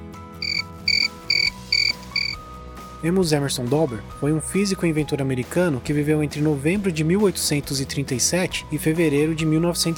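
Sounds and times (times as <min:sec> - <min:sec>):
cricket chirping: 0:00.4 - 0:02.4
speech: 0:03.0 - 0:09.9.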